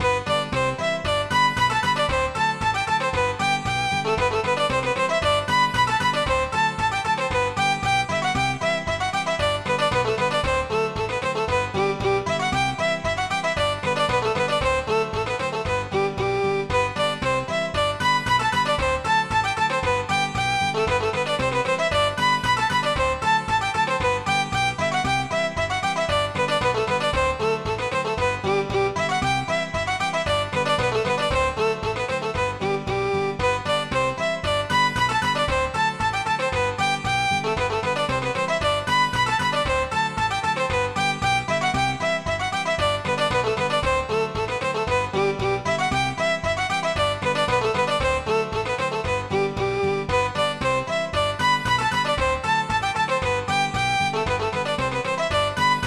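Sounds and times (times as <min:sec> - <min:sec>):
polka MIDI music: 0:00.0 - 0:55.8.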